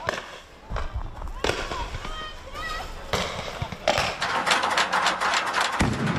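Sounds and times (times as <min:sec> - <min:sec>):
crowd shouting and commotion: 0:00.0 - 0:04.0
paper bombs and rockets exploding: 0:00.0 - 0:06.1.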